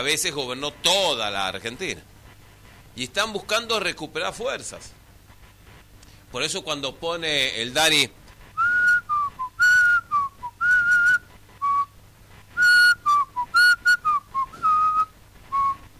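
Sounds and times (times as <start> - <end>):
speech: 0.0 - 2.2, 3.0 - 5.0, 6.3 - 8.2
person whistling a slow melody softly: 8.6 - 11.9, 12.6 - 15.8.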